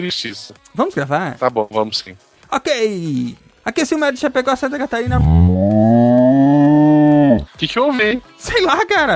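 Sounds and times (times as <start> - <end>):
speech: 0.0 - 5.9, 7.6 - 9.1
cow mooing: 5.1 - 7.5.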